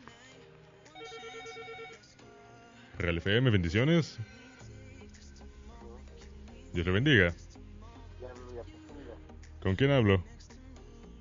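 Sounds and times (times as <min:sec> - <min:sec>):
telephone ringing with an incoming call to a radio station: 0:00.9 - 0:02.2
speech: 0:03.0 - 0:04.4, 0:06.8 - 0:07.4, 0:09.6 - 0:10.3.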